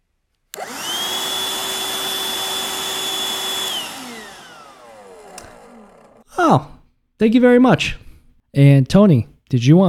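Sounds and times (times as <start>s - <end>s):
vacuum cleaner roaring with a high motor whine: 0.6s - 6.3s
speech: 6.4s - 9.8s.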